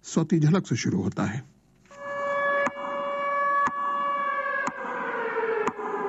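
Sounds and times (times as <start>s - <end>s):
speech: 0.0s - 1.5s
commemorative siren wailing: 1.9s - 6.0s.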